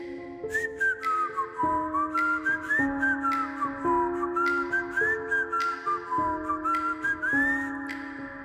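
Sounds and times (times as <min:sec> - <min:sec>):
person whistling a melodic tune: 0:00.5 - 0:08.0.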